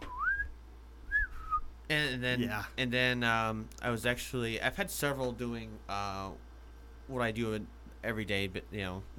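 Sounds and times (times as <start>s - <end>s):
person whistling an eerie two-part tune imitating a signal whistle: 0.0s - 1.7s
speech: 1.9s - 6.5s, 7.1s - 9.1s.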